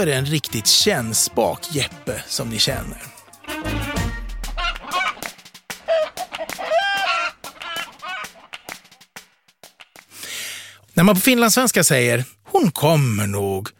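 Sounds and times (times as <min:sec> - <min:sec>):
speech: 0:00.0 - 0:04.0, 0:11.0 - 0:13.7
hen clucking and squawking: 0:04.5 - 0:08.8.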